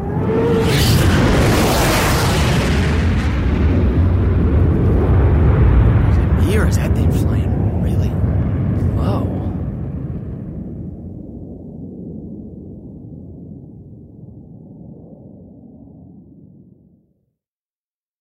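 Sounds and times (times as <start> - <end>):
fighter jet roaring overhead: 0.0 - 12.9.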